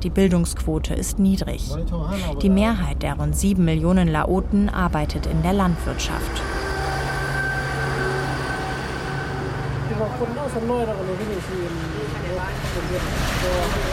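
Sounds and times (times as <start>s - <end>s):
speech: 0.0s - 6.6s, 10.2s - 13.9s
passing high-speed train rumble and rail noise: 2.6s - 13.9s
high-speed train warning horn blaring: 5.8s - 11.0s.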